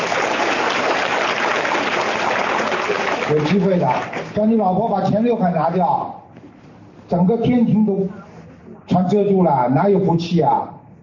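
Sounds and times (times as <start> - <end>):
crowd of many hands applauding: 0.0 - 4.4
speech: 3.3 - 6.2, 7.1 - 8.2, 8.9 - 10.8.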